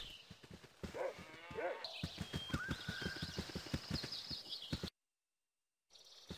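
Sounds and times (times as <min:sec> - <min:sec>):
running footsteps: 0:00.0 - 0:05.0.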